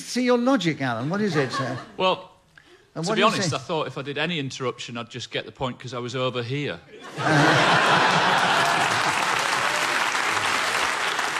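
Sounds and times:
speech: 0.0 - 2.3, 3.0 - 8.4
faint laughter: 1.2 - 2.0, 7.0 - 9.4
audience applause: 7.2 - 11.3.

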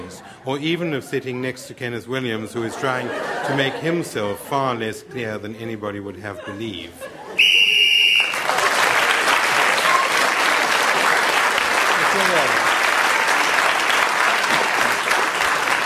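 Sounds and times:
speech: 0.1 - 7.1
laughter: 2.3 - 9.0
referee's whistle blown to end the round: 7.4 - 8.4
audience applause: 7.7 - 15.8.

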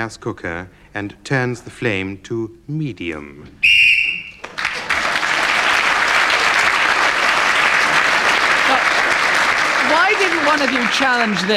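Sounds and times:
speech: 0.0 - 3.7, 10.3 - 11.5
shrill whistle blast: 3.6 - 4.5
crowd applauding and cheering: 4.3 - 11.5.

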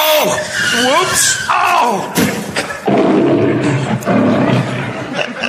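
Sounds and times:
speech: 0.2 - 3.5
laughter: 2.4 - 2.9, 3.5 - 5.4
lion roaring: 2.8 - 5.2.

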